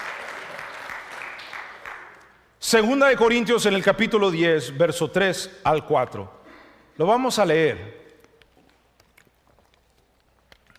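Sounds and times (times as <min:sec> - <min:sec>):
congregation applauding during a church service: 0:00.0 - 0:02.5
speech: 0:02.6 - 0:06.4, 0:07.0 - 0:08.0.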